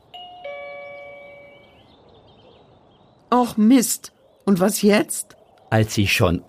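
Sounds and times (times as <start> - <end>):
doorbell two-note ding-dong chime: 0.2 - 1.8
speech: 3.3 - 6.4.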